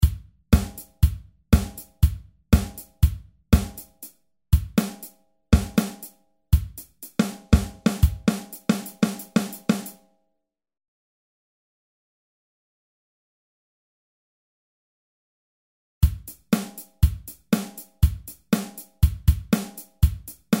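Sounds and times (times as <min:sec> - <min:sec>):
drums: 0:00.0 - 0:10.0, 0:16.0 - 0:20.5.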